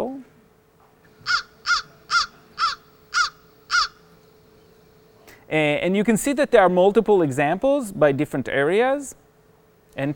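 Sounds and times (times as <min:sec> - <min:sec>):
faint hum: 0:00.0 - 0:10.1
crow cawing: 0:01.2 - 0:04.1
speech: 0:05.5 - 0:09.2, 0:10.0 - 0:10.1.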